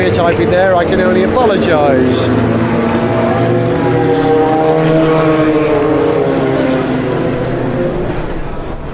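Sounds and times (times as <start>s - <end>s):
speech: 0.0s - 2.8s
raspy Nissan prototype race car engine roaring past: 0.0s - 8.9s.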